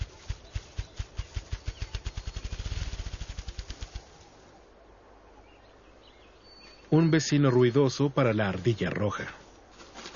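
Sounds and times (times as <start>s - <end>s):
bird courtship drumming display of rapid wing beats in Yellowstone: 0.0s - 4.5s
speech: 6.9s - 9.4s.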